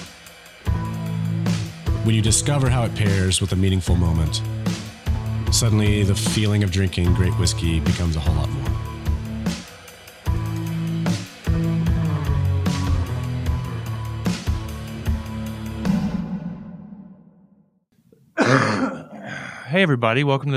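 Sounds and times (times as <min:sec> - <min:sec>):
music with steady beats and sustained tones: 0:00.0 - 0:16.4
speech: 0:02.0 - 0:04.8, 0:05.5 - 0:08.8, 0:19.8 - 0:20.5
single loud cough: 0:18.4 - 0:19.4.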